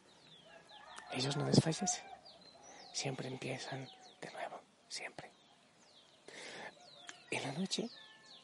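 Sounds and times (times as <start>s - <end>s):
small birds chirping outside: 0.0s - 8.4s
speech: 1.1s - 2.2s, 3.0s - 5.4s, 7.4s - 8.0s.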